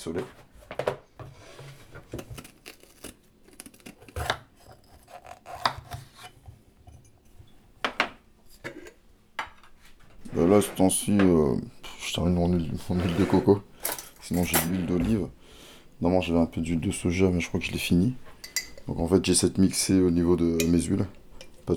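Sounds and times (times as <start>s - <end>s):
speech: 0.0s - 0.8s, 10.5s - 13.7s, 14.3s - 15.4s, 16.0s - 18.3s, 18.9s - 21.7s
knife slicing a bell pepper on a board in a home kitchen: 2.1s - 6.5s.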